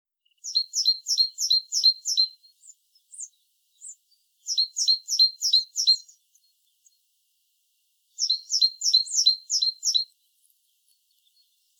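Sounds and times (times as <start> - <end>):
great tit giving bursts of crisp repeated high notes: 0.4 - 6.2, 8.2 - 10.1.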